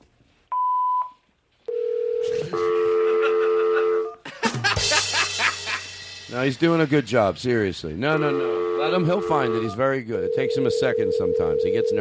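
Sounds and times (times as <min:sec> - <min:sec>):
telephone call tones ringing through to voicemail: 0:00.6 - 0:04.0, 0:08.3 - 0:11.9
laughter: 0:02.2 - 0:05.9, 0:08.1 - 0:09.5
speech: 0:06.3 - 0:11.9.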